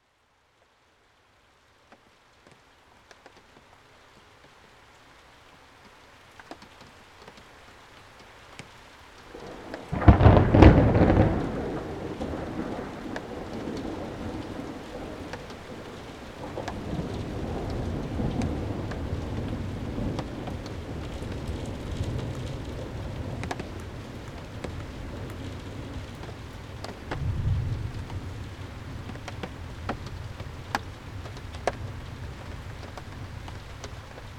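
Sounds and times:
thunderstorm: 9.3 - 34.0.

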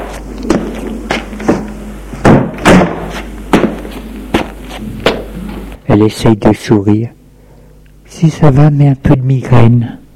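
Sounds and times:
low steady hum: 0.0 - 10.1
sharp wooden thuds and knocks of a door being pushed shut: 0.5 - 5.3
speech: 6.0 - 7.2, 8.2 - 10.0.

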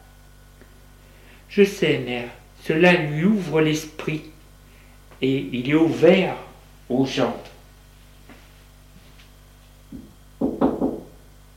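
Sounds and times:
speech: 1.5 - 4.4, 5.2 - 7.5
knocking on a door: 9.9 - 11.2.

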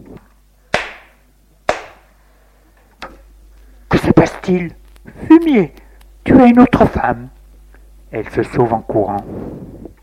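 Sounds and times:
woman slapping a man's face: 0.8 - 1.1, 1.7 - 2.0
speech: 4.2 - 4.8, 5.4 - 7.4, 8.1 - 9.8.

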